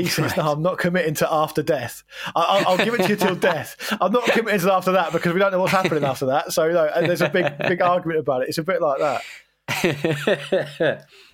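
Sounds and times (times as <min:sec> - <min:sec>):
laughter: 0:00.0 - 0:00.6, 0:02.3 - 0:08.1, 0:09.0 - 0:11.1
speech: 0:00.0 - 0:11.3
short dry coughs with a voiced catch: 0:04.2 - 0:04.5
faint breath: 0:11.1 - 0:11.3.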